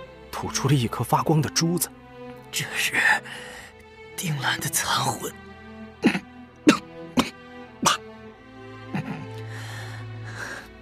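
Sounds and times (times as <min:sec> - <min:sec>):
sustained low musical drone: 0:00.0 - 0:10.8
speech: 0:00.4 - 0:03.6, 0:04.2 - 0:05.4
hoarse weak coughing: 0:06.0 - 0:08.0.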